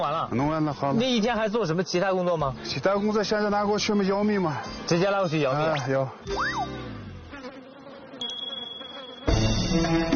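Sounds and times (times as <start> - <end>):
speech: 0.0 - 6.9
Xinjiang black bees buzzing around a beehive during honey harvesting: 5.7 - 10.1.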